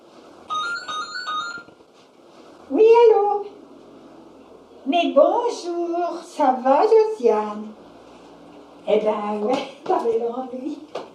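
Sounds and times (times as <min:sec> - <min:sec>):
low hum: 0:00.0 - 0:11.1
phone ringing with a bright electronic melody: 0:00.5 - 0:01.8
speech: 0:04.9 - 0:07.7, 0:08.9 - 0:11.0.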